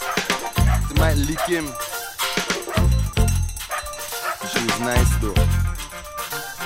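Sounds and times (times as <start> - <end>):
dog barking: 0.0 - 3.0, 3.6 - 5.2
speech: 1.1 - 2.0, 4.6 - 5.6.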